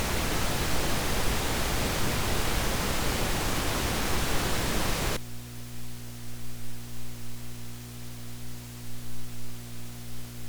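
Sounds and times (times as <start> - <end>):
noise: 0.0 - 5.2.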